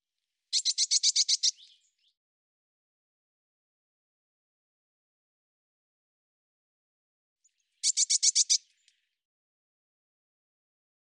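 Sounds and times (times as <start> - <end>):
Eurasian blue tit scolding with rasping buzzy notes: 0.6 - 1.7, 7.8 - 8.7.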